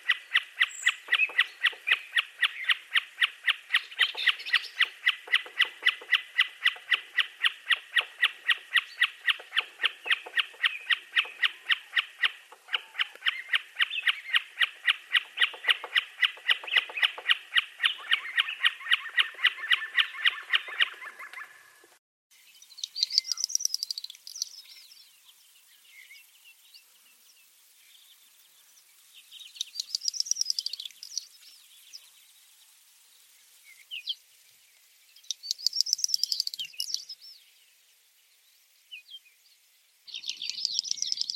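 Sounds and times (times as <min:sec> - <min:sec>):
bright arching bird calls: 0:00.0 - 0:21.9, 0:22.6 - 0:26.9, 0:29.0 - 0:32.2, 0:35.2 - 0:37.4, 0:40.1 - 0:41.3
bird buzzing trill: 0:22.8 - 0:24.5, 0:29.6 - 0:31.3.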